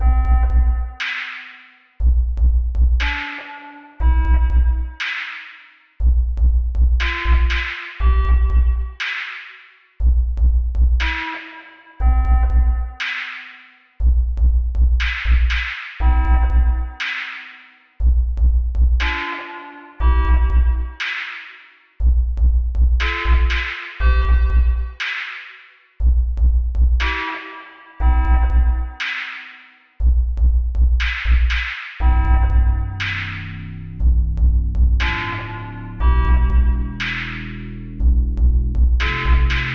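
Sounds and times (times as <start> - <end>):
practice beat: 0.0 - 39.7.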